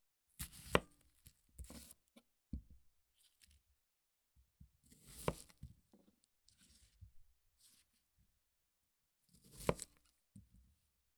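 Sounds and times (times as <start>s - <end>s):
sharp kitchen knife chopping an onion: 5.0s - 5.6s, 9.5s - 10.0s.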